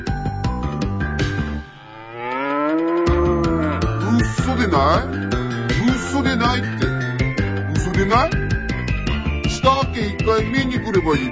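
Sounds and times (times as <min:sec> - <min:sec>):
bouncy rhythmic music with a plucky beat: 0:00.0 - 0:01.8, 0:02.4 - 0:11.3
cow mooing: 0:01.7 - 0:05.2
speech: 0:04.6 - 0:05.2, 0:10.0 - 0:11.3.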